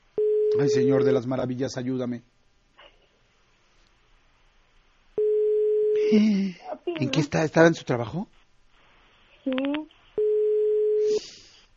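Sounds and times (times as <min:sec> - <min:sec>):
phone ringback tone heard through a phone line: 0:00.2 - 0:01.2, 0:05.2 - 0:06.0, 0:10.2 - 0:11.2
speech: 0:00.6 - 0:02.3, 0:06.1 - 0:06.3, 0:07.0 - 0:08.4, 0:09.4 - 0:09.7.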